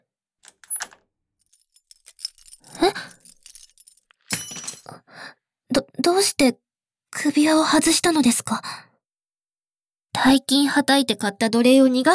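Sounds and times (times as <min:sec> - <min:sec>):
keys jangling and clinking: 0:00.5 - 0:05.0
speech: 0:06.1 - 0:06.6, 0:07.2 - 0:08.9, 0:10.2 - 0:12.1.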